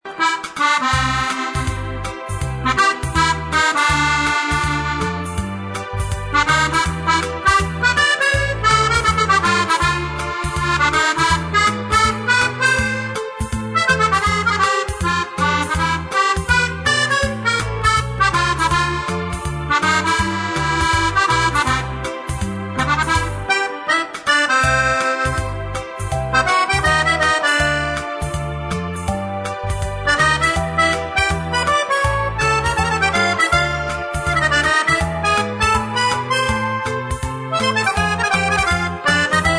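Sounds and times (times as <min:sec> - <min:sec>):
standard chromatic musette: 0:00.1 - 0:39.5.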